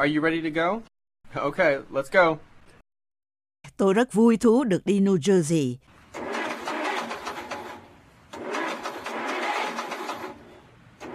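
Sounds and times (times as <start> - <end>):
speech: 0.0 - 2.5, 3.7 - 5.9
faulty car engine grinding cranking and failing to start: 6.1 - 11.1.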